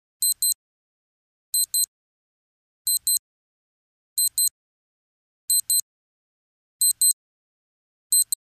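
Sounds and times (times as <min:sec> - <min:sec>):
alarm clock on a wristwatch: 0:00.2 - 0:00.6, 0:01.6 - 0:01.9, 0:02.9 - 0:03.2, 0:04.2 - 0:04.6, 0:05.5 - 0:05.9, 0:06.8 - 0:07.2, 0:08.1 - 0:08.4.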